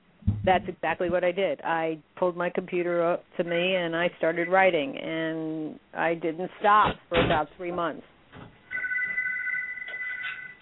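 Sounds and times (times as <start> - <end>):
speech: 0.5 - 8.1
telephone ringing with an electronic trill: 8.7 - 10.6.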